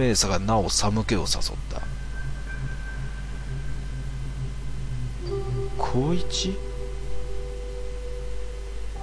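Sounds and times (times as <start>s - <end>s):
speech: 0.0s - 2.0s, 6.0s - 6.7s
steady hiss of static: 0.0s - 9.0s
low hum: 1.0s - 9.0s
faint thin tonal ring: 1.8s - 9.0s.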